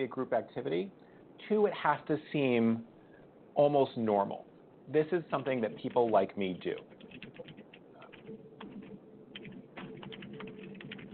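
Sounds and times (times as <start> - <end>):
speech: 0.0 - 2.9, 3.6 - 7.3
low hum: 0.0 - 11.1
keyboard typing: 5.3 - 11.1.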